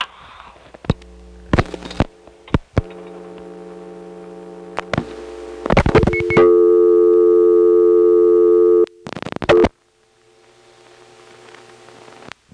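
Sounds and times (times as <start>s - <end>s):
steady humming telephone line tone: 0.9s - 9.7s.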